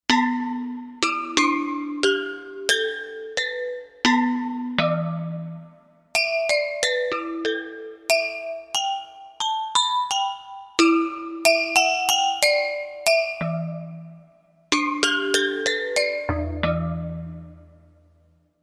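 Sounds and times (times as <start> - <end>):
gamelan sound from a Korg M1Rex: 0.1 - 18.1.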